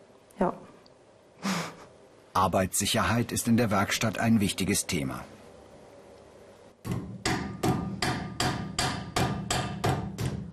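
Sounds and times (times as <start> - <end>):
speech: 0.4 - 0.6, 2.4 - 5.4
hammer shaping sheet metal over an iron stake into a cup shape: 6.9 - 10.5.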